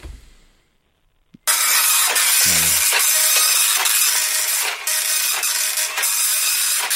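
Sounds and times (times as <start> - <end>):
slow old printer grinding while feeding and printing: 1.5 - 6.9.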